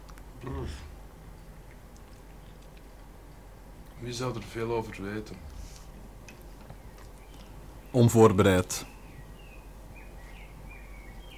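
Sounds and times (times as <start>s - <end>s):
steady low hum: 0.0s - 11.3s
speech: 0.4s - 0.9s, 4.0s - 5.6s, 7.9s - 8.9s
blackbird singing: 6.8s - 11.3s.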